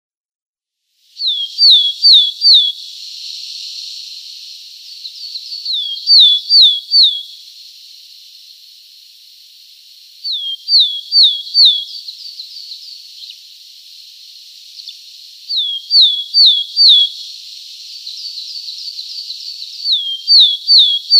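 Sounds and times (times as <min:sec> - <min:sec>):
willow tit song of pure descending whistles: 0:01.1 - 0:07.4, 0:10.2 - 0:13.5, 0:14.4 - 0:21.1.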